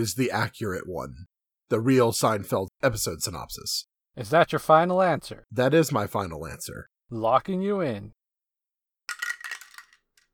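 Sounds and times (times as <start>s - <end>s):
speech: 0.0s - 8.2s
dice rolled clattering across a hard surface: 9.1s - 10.3s.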